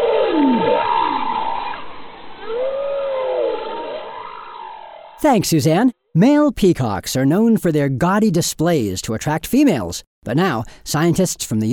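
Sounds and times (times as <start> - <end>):
bowhead whale song: 0.0 - 5.2
speech: 5.2 - 11.7.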